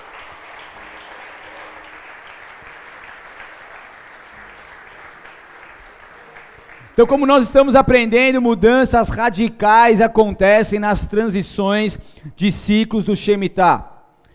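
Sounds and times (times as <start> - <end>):
large audience applauding: 0.0 - 7.4
speech: 7.0 - 13.9.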